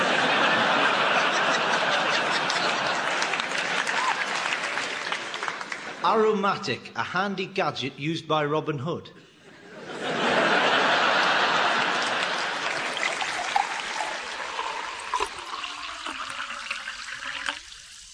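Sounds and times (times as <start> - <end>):
laughter: 0.0 - 6.1, 9.4 - 14.7
speech: 6.0 - 9.2
natural spring water trickling and splashing: 12.1 - 18.1.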